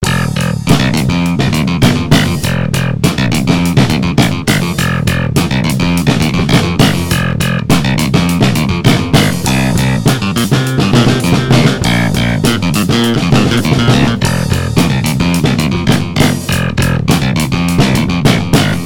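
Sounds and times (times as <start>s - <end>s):
clavinet jam: 0.0s - 18.8s.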